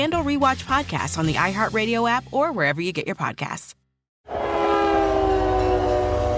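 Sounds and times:
speech: 0.0s - 3.8s
freight train horn blaring in a train yard: 4.3s - 6.3s
rolling rail cars rumbling in a train yard: 4.3s - 6.3s.

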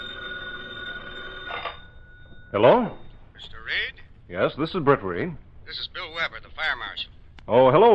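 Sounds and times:
telephone bell ringing: 0.0s - 3.3s
speech: 2.5s - 7.9s.

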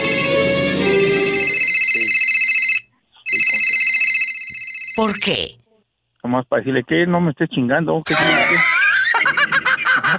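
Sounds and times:
cell phone ringtone in bright electronic tones: 0.0s - 5.5s
speech: 5.0s - 5.6s, 6.2s - 8.7s
laughter: 8.1s - 10.1s.

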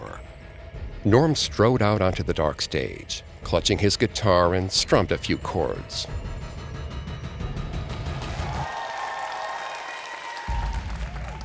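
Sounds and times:
speech: 1.0s - 6.3s
large concert crowd cheering: 8.2s - 11.4s.

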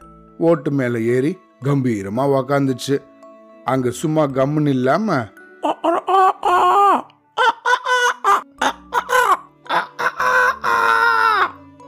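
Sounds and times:
speech: 0.4s - 3.1s, 3.7s - 5.8s
person imitating a rooster crowing cock-a-doodle-doo: 5.7s - 11.6s.

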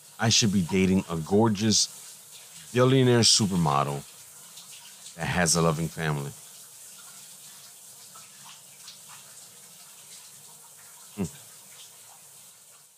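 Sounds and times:
running shower water: 0.0s - 12.9s
speech: 0.2s - 2.0s, 2.7s - 4.1s, 5.2s - 6.4s, 11.2s - 11.4s.

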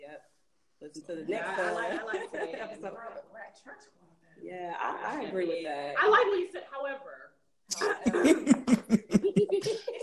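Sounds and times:
speech: 0.2s - 10.0s
laughter: 1.3s - 3.0s, 7.8s - 10.0s
throat clearing: 7.7s - 10.0s.

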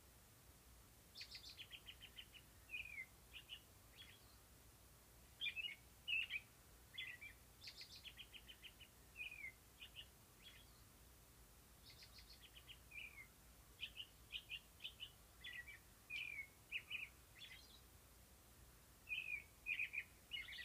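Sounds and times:
birds singing bright phrases of chirps and short trills: 1.1s - 4.5s, 5.4s - 10.9s, 11.8s - 17.9s, 19.0s - 20.6s.

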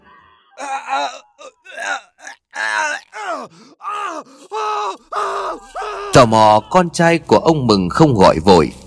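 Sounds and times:
speech: 0.6s - 1.3s, 6.2s - 8.8s
man groaning and moaning in pain inside a woodshed: 0.6s - 6.3s
man breathing: 3.4s - 5.8s.

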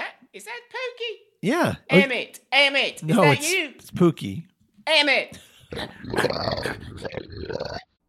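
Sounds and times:
speech: 0.4s - 7.9s
dog growling while play-wrestling: 5.7s - 7.9s.

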